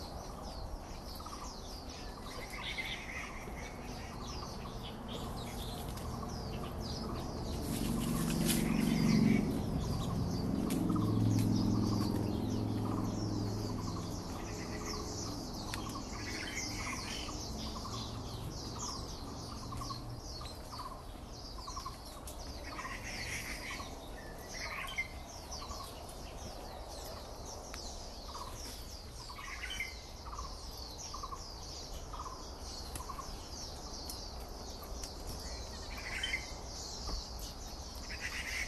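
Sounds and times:
birds calling in a park: 0.0 - 38.6
low rumble: 2.4 - 21.0.

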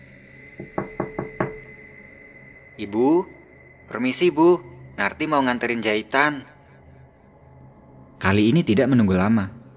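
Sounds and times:
firm knocking on a wooden door: 0.6 - 1.6
speech: 2.8 - 6.5, 8.2 - 9.6.

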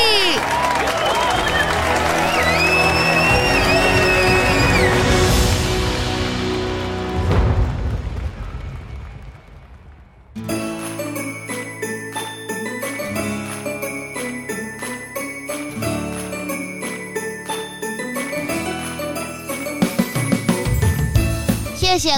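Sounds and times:
applause and cheering for quiz contest winners: 0.0 - 21.7
shrill whistles: 0.4 - 5.5.

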